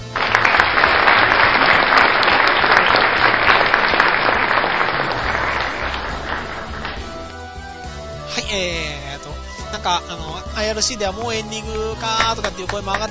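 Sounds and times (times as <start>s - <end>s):
applause: 0.0s - 7.5s, 12.0s - 13.0s
speech: 9.8s - 13.0s.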